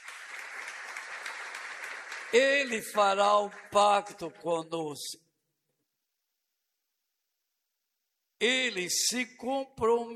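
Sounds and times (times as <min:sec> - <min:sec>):
crowd applauding: 0:00.0 - 0:04.2
speech: 0:02.3 - 0:05.2, 0:08.4 - 0:10.1.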